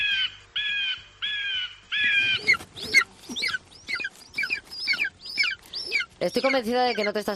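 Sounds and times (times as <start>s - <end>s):
two eagles calling to each other: 0.0s - 7.3s
speech: 6.2s - 7.3s.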